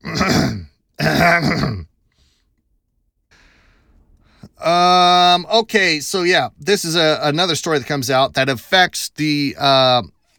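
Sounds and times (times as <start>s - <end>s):
throat clearing: 0.0s - 1.9s
speech: 1.3s - 1.9s, 4.7s - 10.2s
faint breathy exhale: 3.3s - 4.6s.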